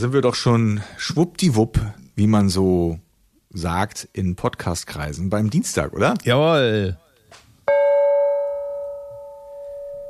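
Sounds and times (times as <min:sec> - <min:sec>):
speech: 0:00.0 - 0:07.4
bright festive gong struck and ringing: 0:07.7 - 0:10.0.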